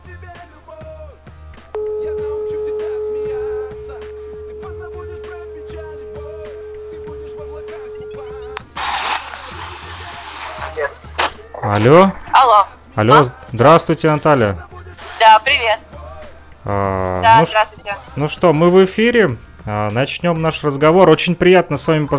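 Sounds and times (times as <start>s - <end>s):
telephone ringback tone from an outgoing call: 1.8s - 8.6s, 17.2s - 17.6s
hissy phone line noise: 8.6s - 10.8s
speech: 11.7s - 15.9s, 16.6s - 22.1s.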